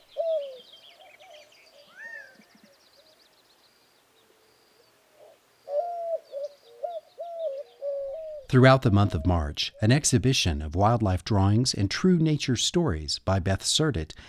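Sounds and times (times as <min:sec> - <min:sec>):
white-winged doves calling in low hooting coos: 0:00.0 - 0:03.2, 0:04.1 - 0:09.5
small birds chittering faintly: 0:00.0 - 0:09.9
speech: 0:08.5 - 0:14.2.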